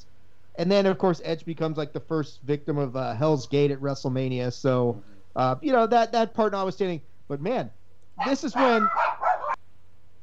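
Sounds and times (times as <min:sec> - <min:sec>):
faint low hum: 0:00.0 - 0:10.2
speech: 0:00.6 - 0:09.1
dog barking: 0:08.2 - 0:09.6.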